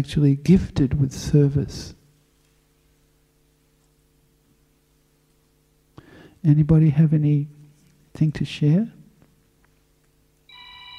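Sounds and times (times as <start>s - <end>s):
speech: 0.0s - 2.0s, 6.4s - 7.6s, 8.2s - 9.0s
low room hum: 0.0s - 10.9s
telephone ringing with a steady electronic ring: 10.5s - 10.9s.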